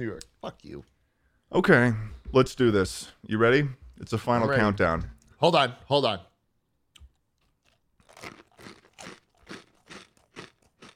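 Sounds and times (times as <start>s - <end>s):
speech: 0.0s - 6.3s
crunchy chewing: 7.0s - 10.9s.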